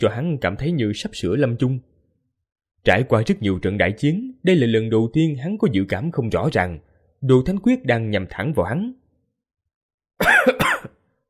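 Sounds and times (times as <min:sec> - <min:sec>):
speech: 0:00.0 - 0:01.9, 0:02.8 - 0:09.0, 0:10.2 - 0:10.7
badly wounded man coughing up blood in battle: 0:10.2 - 0:11.0.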